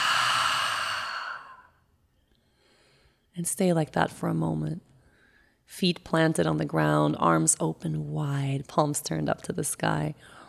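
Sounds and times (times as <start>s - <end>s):
exhale through open mouth: 0.0s - 1.7s
speech: 3.4s - 4.9s, 5.7s - 10.4s.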